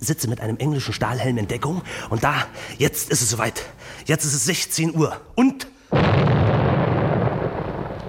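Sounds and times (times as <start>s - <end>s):
speech: 0.0s - 6.4s
detonation explosion roar and rumble set off as a spectacle: 6.0s - 8.0s.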